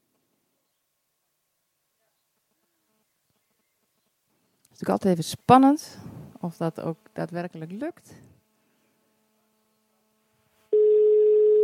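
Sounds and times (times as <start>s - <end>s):
speech: 4.8s - 8.3s
telephone ringback tone on an outgoing call: 10.7s - 11.6s.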